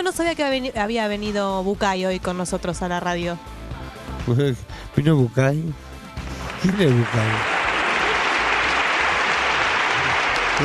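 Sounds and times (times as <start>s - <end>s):
speech: 0.0s - 3.6s, 4.3s - 5.9s, 6.6s - 7.5s
applause from an audience: 6.2s - 10.6s.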